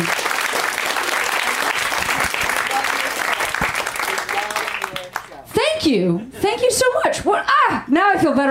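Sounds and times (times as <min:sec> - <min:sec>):
large audience at a show clapping for a family: 0:00.0 - 0:05.4
people cheering: 0:00.0 - 0:05.4
speech: 0:05.9 - 0:08.4.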